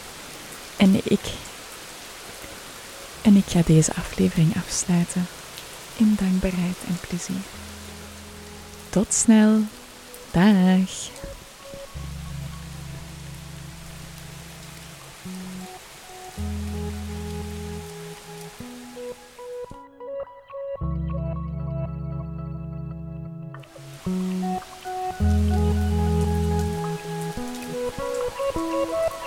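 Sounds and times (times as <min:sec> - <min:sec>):
rain on leaves of plants: 0:00.0 - 0:19.8, 0:23.6 - 0:29.2
speech: 0:00.8 - 0:01.5, 0:03.3 - 0:05.4, 0:06.0 - 0:07.8, 0:08.9 - 0:11.4
slow electronic music with deep sustained notes: 0:07.4 - 0:29.2.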